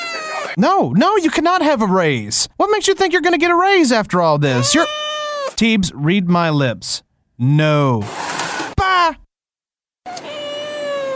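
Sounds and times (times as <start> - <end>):
single drawn-out cat meow: 0.0 - 0.6, 4.5 - 5.6, 10.1 - 11.1
speech: 0.6 - 8.2.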